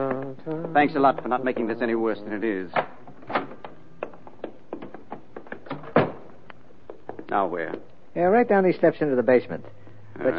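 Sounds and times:
speech: 0.0 - 2.9, 7.3 - 10.3
door thudding shut: 5.6 - 6.3.

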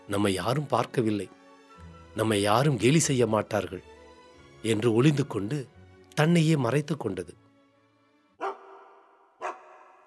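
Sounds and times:
speech: 0.1 - 1.4, 2.2 - 4.0, 4.6 - 7.4
dog barking: 8.4 - 10.0.

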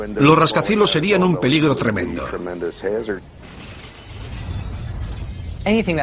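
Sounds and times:
speech: 0.0 - 3.5, 5.6 - 6.0
glass windows of tall buildings shattering and crashing down in a strong earthquake: 3.4 - 6.0.

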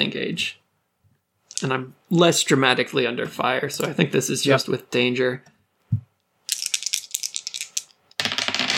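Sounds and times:
speech: 0.0 - 0.6, 1.5 - 6.0
dice rattling in a cup: 6.5 - 8.7.

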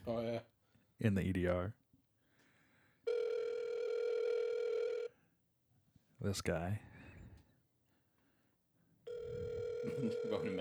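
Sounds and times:
speech: 0.0 - 1.8, 6.2 - 6.9, 9.8 - 10.6
outgoing phone call ringback tone: 3.1 - 5.1, 9.1 - 10.6.

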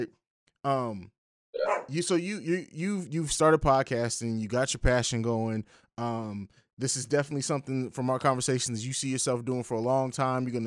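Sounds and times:
speech: 0.0 - 10.6
dog barking: 1.6 - 2.0.

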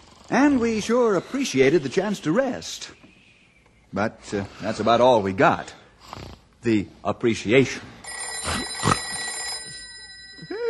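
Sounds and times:
speech: 0.3 - 3.1, 3.9 - 8.7
old-fashioned telephone bell ringing at a ranger headquarters: 8.0 - 10.6.

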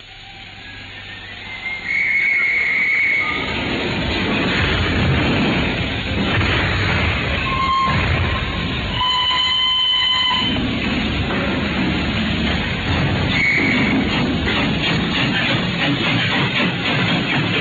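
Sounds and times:
steam train pulling away from a station: 0.0 - 17.6
shrill steam train whistle: 0.2 - 3.6, 7.4 - 10.6, 13.3 - 13.9.

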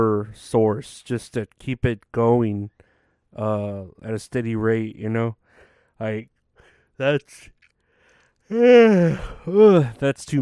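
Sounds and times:
speech: 0.0 - 5.4, 6.0 - 6.3, 7.0 - 7.6, 8.5 - 10.4
person yawning: 8.5 - 9.9.

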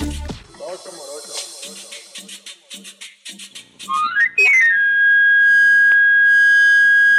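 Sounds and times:
street knife sharpener's wooden pan flute whistle in Mexico City: 3.8 - 7.1.

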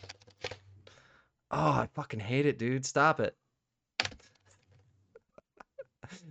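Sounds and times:
soft typing on a quiet computer keyboard: 0.0 - 0.6, 4.0 - 4.4
speech: 1.5 - 3.4.

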